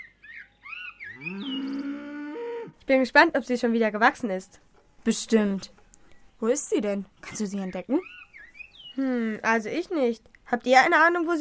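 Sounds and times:
cow mooing in a sunny pasture beside a dense fir forest: 1.1s - 2.8s
speech: 2.9s - 5.8s, 6.4s - 8.2s, 9.0s - 11.3s.

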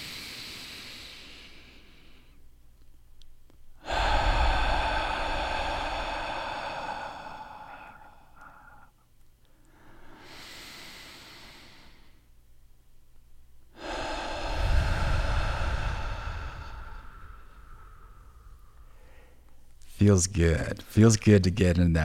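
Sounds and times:
people breathing in together: 0.0s - 2.4s, 3.8s - 12.3s, 13.7s - 19.8s
speech: 20.0s - 22.0s.

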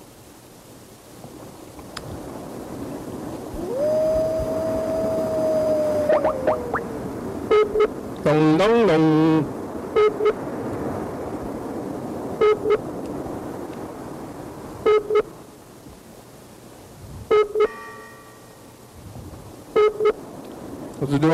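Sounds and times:
low constant hiss: 0.0s - 21.3s
phone ringback tone in double rings: 7.5s - 8.0s, 14.8s - 15.3s, 17.3s - 18.0s, 19.8s - 20.2s.

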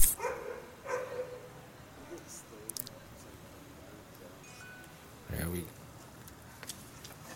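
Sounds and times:
dog barking in a courtyard: 0.1s - 1.6s.

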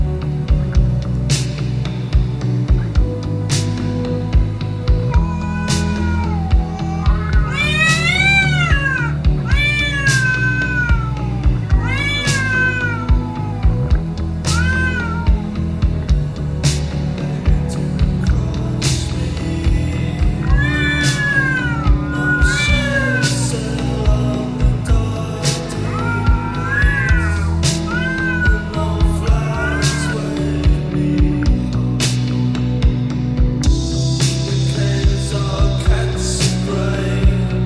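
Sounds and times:
sustained low tones: 0.0s - 37.6s
cats meowing: 5.1s - 15.7s, 20.2s - 24.4s, 25.4s - 30.4s.

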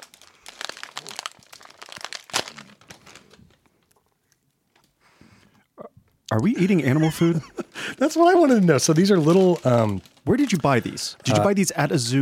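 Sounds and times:
plastic packaging of a jerky snack tearing open: 0.0s - 3.9s, 8.4s - 11.4s
plastic packaging of a jerky snack crinkling and rustling: 0.0s - 4.8s, 8.0s - 11.5s
speech: 6.3s - 12.2s
laughter: 6.4s - 8.1s.

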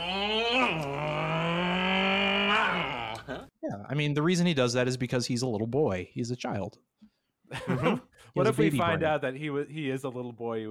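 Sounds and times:
man on a bike imitating a motorcycle engine: 0.0s - 3.1s
speech: 3.8s - 10.7s
laughter: 7.5s - 9.0s.

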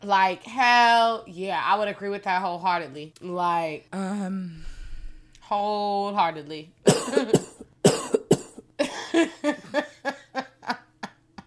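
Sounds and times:
speech: 0.0s - 4.7s, 5.5s - 7.5s
person coughing: 6.9s - 9.0s.

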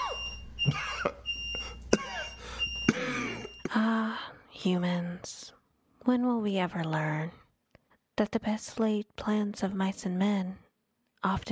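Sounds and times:
person coughing: 0.0s - 1.2s, 1.9s - 4.0s
smoke alarm beeping: 0.0s - 3.8s
speech: 0.7s - 0.9s, 4.6s - 7.4s, 8.2s - 10.6s, 11.2s - 11.5s.

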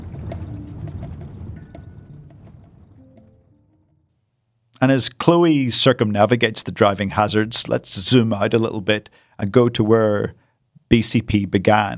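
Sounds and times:
water splashing as people scrub clothes in a rainwater puddle: 0.0s - 3.7s
low wet rumble: 0.0s - 4.4s
speech: 4.8s - 11.9s.

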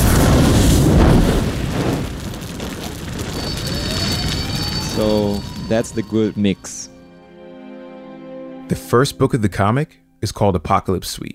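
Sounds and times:
rolling roar of debris and crackle: 0.0s - 6.7s
loud explosion in an action show clip: 0.0s - 7.0s
faint high whine: 3.2s - 7.4s
speech: 5.0s - 7.0s, 8.7s - 11.3s.

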